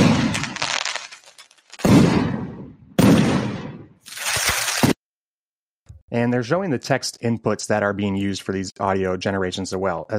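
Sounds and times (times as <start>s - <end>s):
fireworks booming and crackling: 0.0s - 4.0s
speech: 6.1s - 10.1s.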